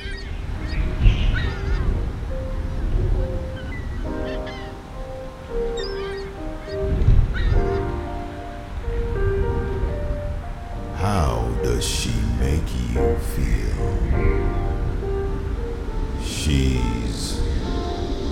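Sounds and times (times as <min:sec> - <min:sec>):
birds with harsh honking cries: 0:00.0 - 0:08.7
ocean waves: 0:00.0 - 0:18.2
wind: 0:00.0 - 0:18.2.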